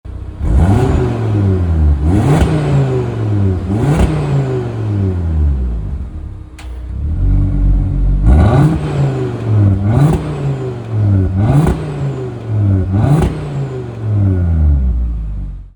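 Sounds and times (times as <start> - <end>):
Audi RS3 8Y engine revving: 0.2 - 15.7.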